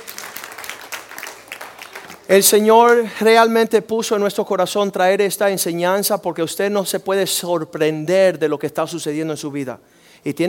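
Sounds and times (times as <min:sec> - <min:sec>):
crowd applauding indoors: 0:00.0 - 0:02.3
speech: 0:02.3 - 0:10.4.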